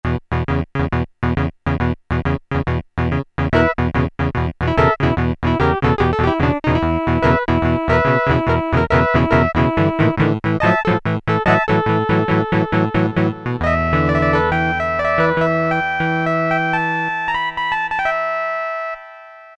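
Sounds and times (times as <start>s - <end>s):
electric guitar preset sound on Casio MT-68 keyboard: 0.0s - 19.5s.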